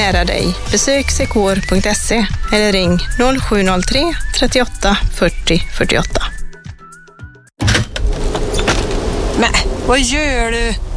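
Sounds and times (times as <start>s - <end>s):
speech: 0.0s - 6.3s, 9.4s - 10.8s
window being opened in a house at night: 7.6s - 9.2s
broadband rush of outside air and noise: 8.0s - 10.9s.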